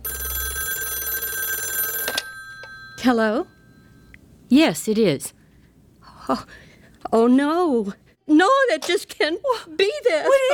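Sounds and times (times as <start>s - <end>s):
telephone ringing at night with a rapidly trilling bell tone: 0.0s - 4.1s
speech: 3.0s - 3.6s, 4.5s - 5.4s, 6.3s - 10.5s.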